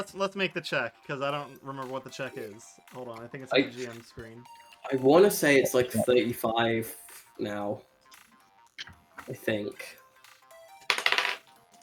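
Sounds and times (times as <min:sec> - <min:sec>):
speech: 0:00.0 - 0:07.9, 0:08.8 - 0:10.0
small hard die clattering on a tabletop: 0:10.8 - 0:11.4.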